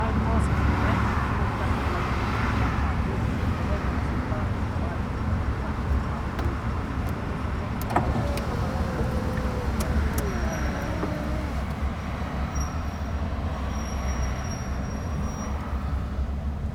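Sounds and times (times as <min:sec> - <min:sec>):
heavy traffic: 0:00.2 - 0:16.7
car window opening and closing at a drive-thru: 0:05.7 - 0:12.0
machines: 0:05.9 - 0:11.9.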